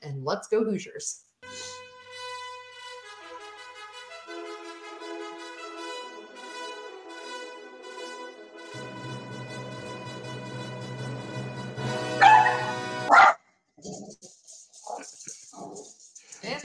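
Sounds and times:
speech: 0.0s - 1.7s
steady musical background: 1.4s - 13.4s
dog barking: 12.2s - 14.1s.

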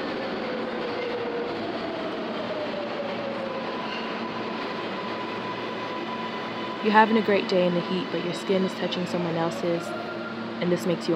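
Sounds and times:
packed subway train rumbling in New York City during rush hour: 0.0s - 11.1s
speech: 6.8s - 11.1s.

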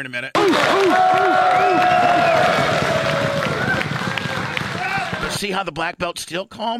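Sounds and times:
speech: 0.0s - 2.8s, 5.3s - 6.7s
crowd cheering and yelling at a jiu-jitsu match: 0.4s - 5.4s.

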